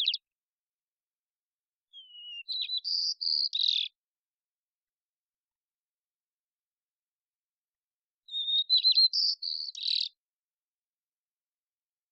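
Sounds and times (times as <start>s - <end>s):
immature white-crowned sparrow Zonotrichia leucophrys singing in Washington, United States: 0.0s - 0.3s, 1.9s - 4.0s, 8.2s - 10.2s.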